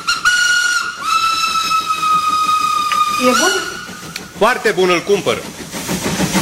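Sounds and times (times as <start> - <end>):
steam locomotive whistle shrieking: 0.0 - 4.4
steam locomotive steam hissing: 0.0 - 6.3
speech: 3.2 - 3.6, 4.4 - 5.6.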